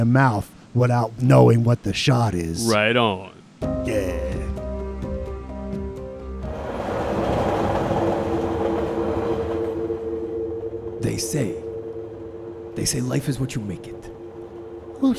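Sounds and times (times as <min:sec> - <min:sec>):
speech: 0:00.0 - 0:04.4, 0:11.2 - 0:11.6, 0:12.8 - 0:14.1, 0:15.0 - 0:15.1
train rolling along rails: 0:06.2 - 0:15.1
high squeal or whoosh: 0:07.2 - 0:15.1.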